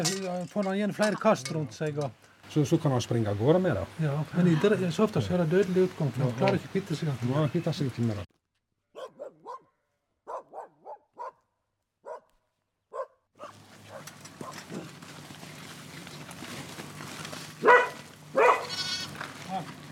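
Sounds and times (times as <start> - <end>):
speech: 0.0 - 8.3
rustling outdoor noise: 0.0 - 9.6, 13.4 - 19.9
black Norwegian elkhound barking in short sharp yaps: 8.9 - 14.6, 17.6 - 18.8.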